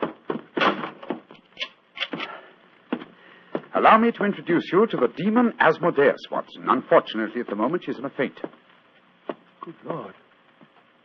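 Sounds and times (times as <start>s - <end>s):
door being pushed shut: 0.0s - 1.3s
speech: 3.8s - 8.6s, 9.6s - 10.2s.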